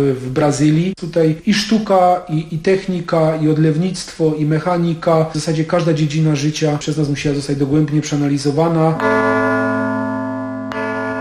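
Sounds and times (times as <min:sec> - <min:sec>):
speech: 0:00.0 - 0:09.4
large cast church bell ringing decorated with Brazilian animals: 0:08.8 - 0:11.1.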